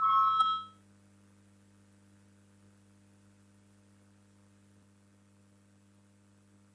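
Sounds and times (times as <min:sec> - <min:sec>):
voting signal electronic chime in a parliament chamber: 0:00.0 - 0:00.7
low steady hum: 0:00.0 - 0:06.7.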